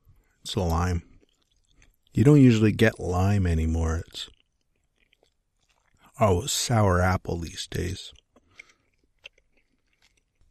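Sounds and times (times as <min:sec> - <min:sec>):
chewing gum near the microphone: 0:00.1 - 0:06.7, 0:07.5 - 0:10.4
speech: 0:00.4 - 0:01.1, 0:02.2 - 0:04.4, 0:06.2 - 0:08.2.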